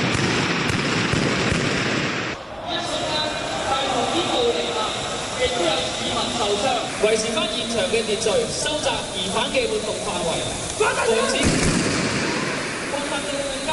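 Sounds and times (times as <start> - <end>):
gunshots during a counter-terrorism drill: 0.0 - 2.4, 11.3 - 13.2
dense wash of noise: 0.0 - 13.7
speech: 7.0 - 11.8.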